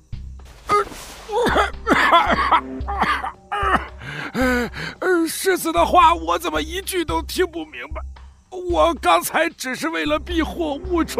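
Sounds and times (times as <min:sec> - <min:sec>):
man coughing while holding his chest in pain: 0:00.7 - 0:04.0
man groaning with strained exhalations: 0:00.7 - 0:05.2
speech: 0:01.3 - 0:03.1, 0:05.5 - 0:11.1.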